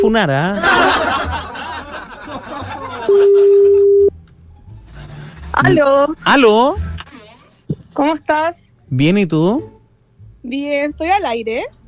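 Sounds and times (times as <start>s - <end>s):
speech: 0.0s - 0.8s, 5.6s - 6.8s, 8.0s - 9.7s, 10.4s - 11.8s
laughter: 0.5s - 3.9s
steady electronic telephone ringback tone: 3.1s - 4.1s.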